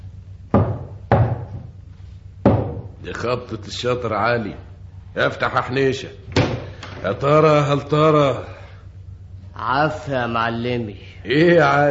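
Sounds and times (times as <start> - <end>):
heavy hollow knocks on a gate: 0.5 - 1.7, 2.4 - 3.0
speech: 3.0 - 6.4, 7.0 - 8.6, 9.6 - 11.9.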